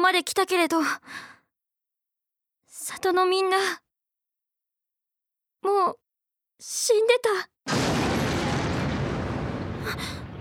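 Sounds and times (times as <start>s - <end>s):
speech: 0.1s - 1.3s, 2.9s - 3.8s, 5.6s - 6.0s, 6.6s - 7.9s, 9.8s - 10.2s
explosion: 7.7s - 10.3s.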